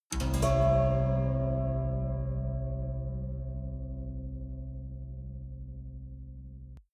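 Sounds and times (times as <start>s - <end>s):
haunted major string chord: 0.2s - 6.8s.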